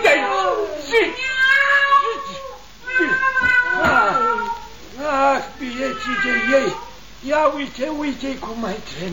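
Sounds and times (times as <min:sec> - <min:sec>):
cat meowing: 0:00.1 - 0:04.8, 0:05.4 - 0:07.0
speech: 0:07.8 - 0:09.1.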